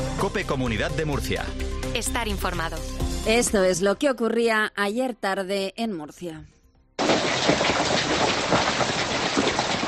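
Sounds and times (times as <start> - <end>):
speech: 0.2 - 6.5
heavy rain and hail in a thunderstorm: 7.0 - 9.8.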